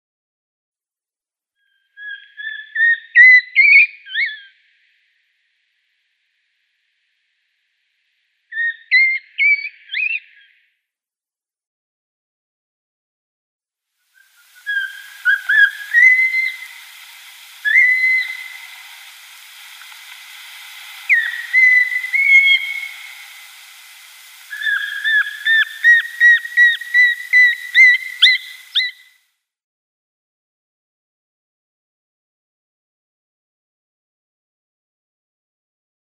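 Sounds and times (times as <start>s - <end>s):
pygmy owl display call in autumn: 1.6s - 4.6s, 14.2s - 29.2s.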